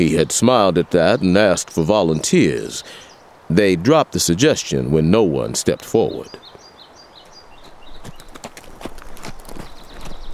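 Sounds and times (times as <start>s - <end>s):
speech: 0.0s - 6.6s
horse hooves clip-clopping as a rider approaches at a walk: 7.2s - 10.3s.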